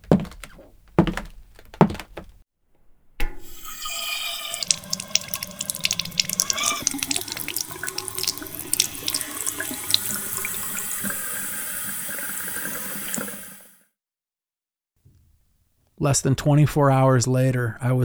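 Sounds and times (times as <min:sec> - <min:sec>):
kitchen tap running into a glass: 0:03.2 - 0:10.6
speech: 0:16.0 - 0:18.0.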